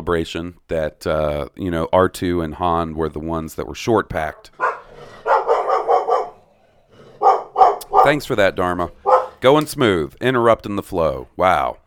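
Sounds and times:
speech: 0.0 - 4.6, 8.0 - 11.8
female dog barking loudly: 4.3 - 6.5, 7.1 - 9.5.

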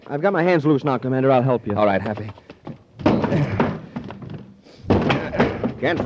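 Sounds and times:
speech: 0.1 - 2.5, 5.8 - 6.0
door being battered: 2.7 - 6.0.

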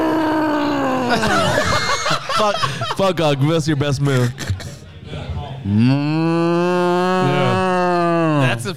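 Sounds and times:
quiet noise: 0.0 - 8.7
laughter: 0.9 - 4.8
speech: 1.1 - 1.8, 2.4 - 4.4, 5.6 - 7.7, 8.4 - 8.7
person imitating a cow with a long loud moo: 5.7 - 8.5.

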